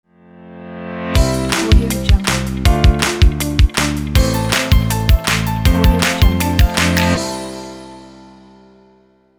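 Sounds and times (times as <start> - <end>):
elegant upbeat corporate logo music: 1.2 - 7.9.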